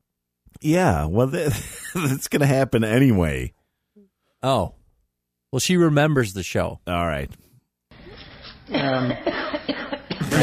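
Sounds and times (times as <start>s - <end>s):
speech: 0.6s - 3.6s, 4.4s - 4.8s, 5.5s - 7.5s, 8.7s - 10.4s
person coughing: 8.7s - 10.4s.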